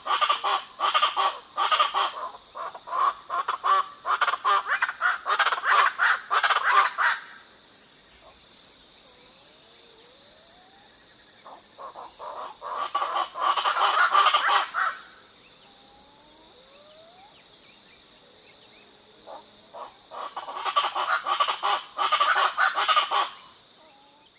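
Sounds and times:
speckled chachalaca harsh raucous calls: 0:00.0 - 0:07.4, 0:11.4 - 0:15.7, 0:19.3 - 0:24.3
steady high insect drone: 0:00.0 - 0:24.3.

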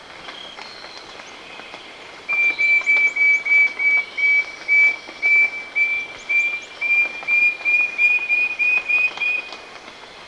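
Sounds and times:
Wing-banded Wren song in Ecuador: 0:02.3 - 0:09.6.

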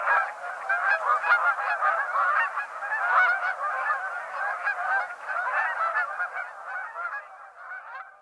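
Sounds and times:
flock of Canada geese honking: 0:00.0 - 0:08.1.

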